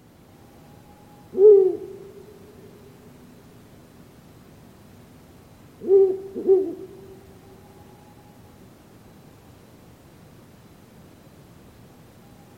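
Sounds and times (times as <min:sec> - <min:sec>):
Ural owl giving deep hoots: 0:01.3 - 0:02.4, 0:05.8 - 0:07.6.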